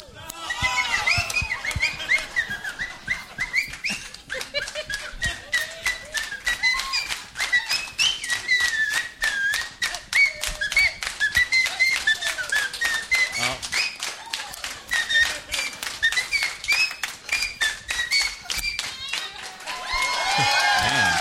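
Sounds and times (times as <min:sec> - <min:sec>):
laughter: 0:00.0 - 0:07.8, 0:14.2 - 0:16.0, 0:18.4 - 0:21.1
crowd clapping along in a fast steady rhythm: 0:00.2 - 0:21.1
person whistling a wandering melody: 0:00.5 - 0:14.2, 0:14.8 - 0:19.0.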